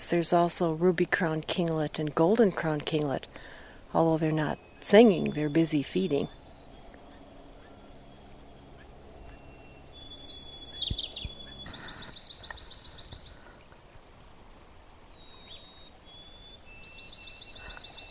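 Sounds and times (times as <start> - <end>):
speech: 0.1 - 6.4
swamp sparrow trill song: 4.0 - 13.7, 15.2 - 18.0.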